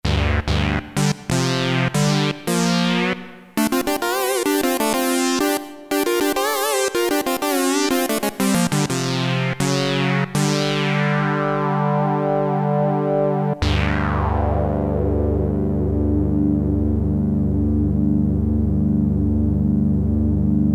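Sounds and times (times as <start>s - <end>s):
Roland Jupiter-8 synthesizer factory patch: 0.0s - 20.7s.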